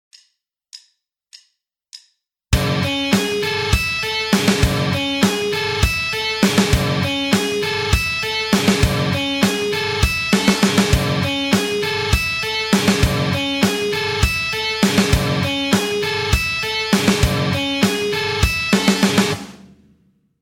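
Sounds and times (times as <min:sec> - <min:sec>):
eight-string guitar: 0:02.6 - 0:19.4.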